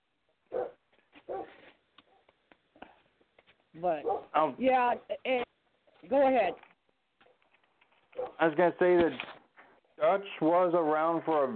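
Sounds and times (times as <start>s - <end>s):
dogs barking at a leaf blowing across the yard: 0.5s - 2.3s, 4.0s - 4.4s, 8.2s - 8.4s
dogs yipping: 0.5s - 2.3s, 8.2s - 8.4s
speech: 3.8s - 5.4s, 6.1s - 6.7s, 8.4s - 9.3s, 10.1s - 11.5s.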